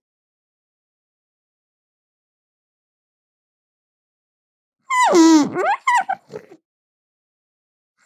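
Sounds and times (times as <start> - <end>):
alpaca grumbling: 5.1 - 6.6.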